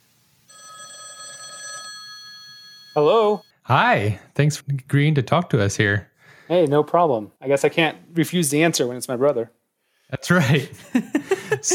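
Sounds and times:
telephone ring tone for an outgoing call: 0.5s - 3.5s
speech: 3.0s - 11.7s
laughter: 10.4s - 11.7s.

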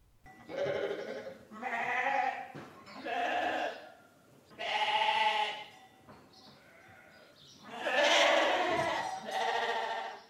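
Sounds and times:
sheep bleating: 0.5s - 3.8s, 4.6s - 5.7s, 6.6s - 10.2s.

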